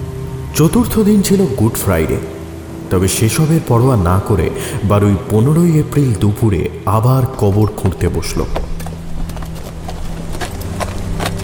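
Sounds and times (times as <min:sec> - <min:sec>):
low constant hum: 0:00.0 - 0:11.4
speech: 0:00.6 - 0:08.7
horse hooves clip-clopping at a walking pace: 0:08.5 - 0:11.4.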